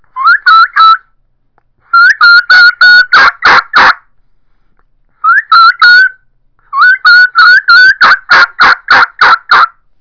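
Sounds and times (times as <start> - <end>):
turkey mouth call kee kee runs: 2.0 - 4.0, 5.3 - 6.2, 6.8 - 9.7.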